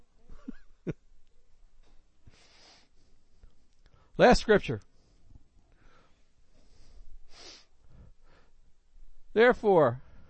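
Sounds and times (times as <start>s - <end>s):
speech: 4.2s - 4.9s, 9.4s - 10.0s
nose blowing: 7.3s - 7.7s.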